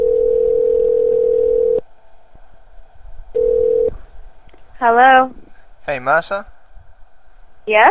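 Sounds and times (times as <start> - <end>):
electronic telephone tone on a voicemail line: 0.0 - 1.8, 3.4 - 4.0
speech: 4.8 - 6.5, 7.7 - 7.8.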